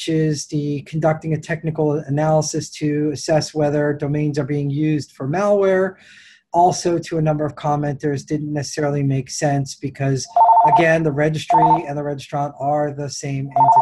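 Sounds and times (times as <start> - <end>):
speech: 0.0 - 13.7
telephone ringing in the background: 10.3 - 11.8, 13.6 - 13.7.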